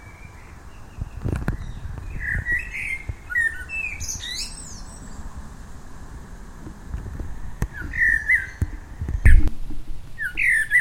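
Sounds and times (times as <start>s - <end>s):
Common blackbird Turdus merula singing: 0.0s - 5.3s, 7.7s - 9.5s, 10.2s - 10.7s.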